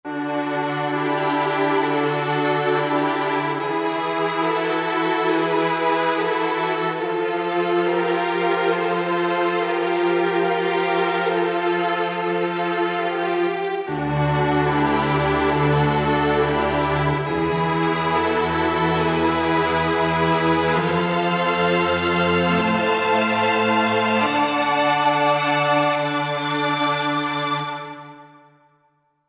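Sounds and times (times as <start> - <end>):
strings: 0.0 - 28.5.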